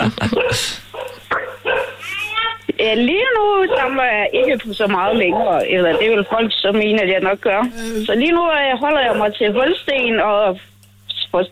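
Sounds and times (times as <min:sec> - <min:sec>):
speech: 0:00.1 - 0:00.8, 0:02.8 - 0:10.7
dogs barking: 0:00.3 - 0:02.2, 0:03.2 - 0:07.0, 0:09.0 - 0:09.8.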